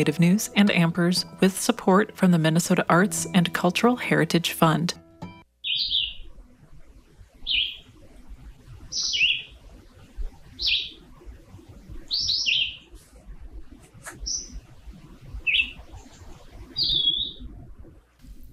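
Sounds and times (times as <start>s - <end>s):
speech: 0.0s - 5.0s
red-eyed vireo singing in Washington County Minnesota: 5.6s - 6.3s, 7.4s - 8.0s, 8.9s - 9.6s, 12.1s - 12.9s, 15.4s - 17.5s.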